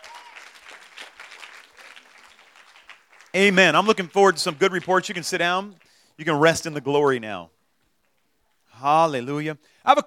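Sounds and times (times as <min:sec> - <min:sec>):
congregation applause as a clap offering: 0:00.0 - 0:05.6
speech: 0:03.3 - 0:07.6, 0:08.8 - 0:10.0.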